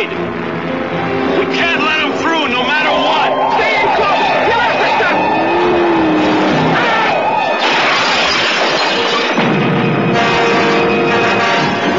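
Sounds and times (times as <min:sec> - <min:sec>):
car engine roaring: 0:00.0 - 0:11.2
crashing and smashing: 0:07.6 - 0:09.8.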